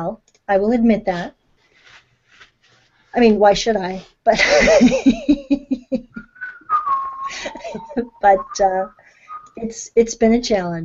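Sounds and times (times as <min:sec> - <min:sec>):
speech: 0:00.0 - 0:01.4, 0:03.1 - 0:05.6, 0:07.3 - 0:09.0, 0:09.6 - 0:10.8
person whistling a short wavering tune: 0:06.2 - 0:09.6.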